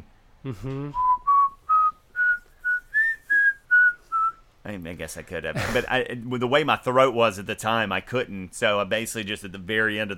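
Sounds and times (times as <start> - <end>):
speech: 0.4 - 1.1, 4.6 - 10.1
person whistling a short melody: 0.6 - 4.4.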